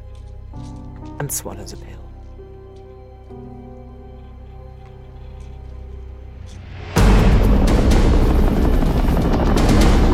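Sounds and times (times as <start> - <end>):
speech: 1.2 - 2.1
heavily armored helicopters flying in formation above city streets: 7.4 - 10.1.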